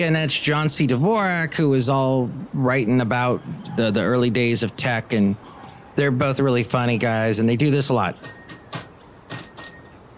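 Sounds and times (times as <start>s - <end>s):
speech: 0.0s - 8.4s
small bell being struck: 8.2s - 10.0s.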